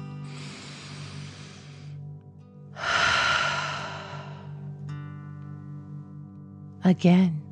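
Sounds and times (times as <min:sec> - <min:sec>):
person breathing deeply in and out through the mouth in a guided breathing exercise: 0:00.1 - 0:02.1, 0:02.8 - 0:04.7.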